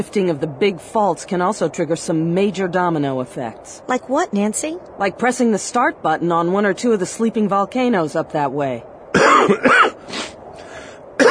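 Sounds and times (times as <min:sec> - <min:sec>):
speech: 0:00.0 - 0:09.9
person coughing and clearing throat from dust: 0:09.2 - 0:10.0.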